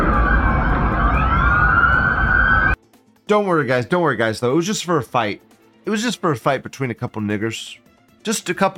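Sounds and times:
police car sirens passing: 0.0 - 2.8
speech: 3.3 - 8.7.

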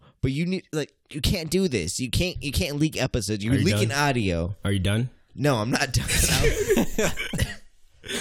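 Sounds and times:
speech: 0.2 - 7.5
person coughing: 6.1 - 8.1.

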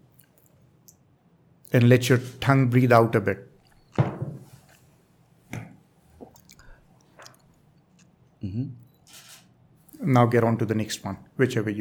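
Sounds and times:
speech: 1.7 - 3.5, 10.1 - 11.7
person sipping and swallowing water between whisky tastings: 6.1 - 9.0.

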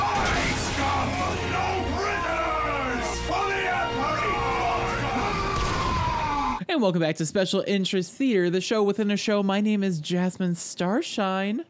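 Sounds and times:
people shouting: 0.0 - 6.6
speech: 6.7 - 11.6.

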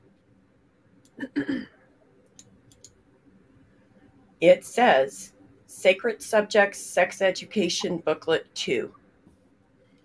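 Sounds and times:
computer mouse clicks: 2.2 - 3.0
speech: 4.4 - 9.0.

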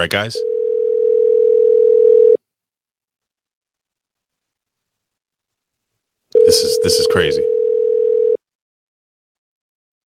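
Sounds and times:
speech: 0.0 - 0.5, 6.4 - 7.5
telephone ringing tone on an unanswered phone call: 0.4 - 2.4, 6.4 - 8.4.

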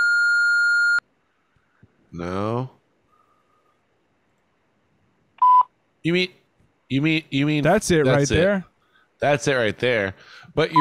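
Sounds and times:
call waiting beep: 0.0 - 1.0, 5.4 - 5.7
speech: 2.1 - 2.8, 6.0 - 10.7.

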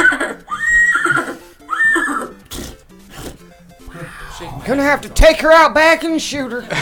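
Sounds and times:
man imitating a horse whinny: 0.0 - 4.7
breathy snorting blows: 2.3 - 4.7
speech: 4.7 - 6.8.

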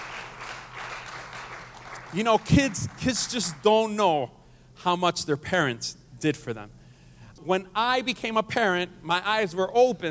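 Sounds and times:
audience crowd applauding: 0.0 - 3.7
speech: 2.1 - 6.8, 7.4 - 10.0.

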